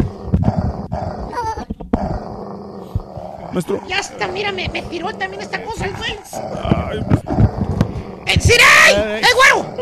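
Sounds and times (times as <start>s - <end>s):
dog growling and barking: 0.0s - 9.8s
speech: 3.6s - 7.2s, 8.3s - 9.8s.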